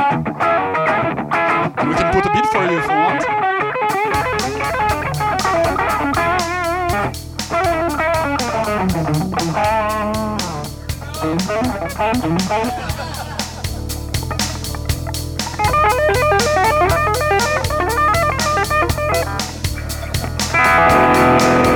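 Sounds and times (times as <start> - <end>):
electric guitar played through a simple distortion effect: 0.0 - 21.7
dense band mix of driving bass, drums and piano: 3.9 - 21.7
laughter: 10.8 - 13.8.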